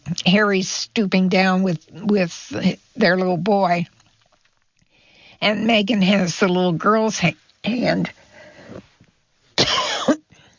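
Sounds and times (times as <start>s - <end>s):
speech: 0.2s - 4.0s, 5.4s - 8.8s
person coughing from a tickle in the throat: 9.6s - 10.3s.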